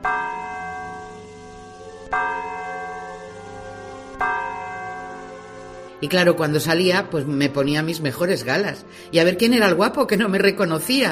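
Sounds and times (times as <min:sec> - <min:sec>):
church bell tolling: 0:00.0 - 0:07.7
speech: 0:06.0 - 0:11.1.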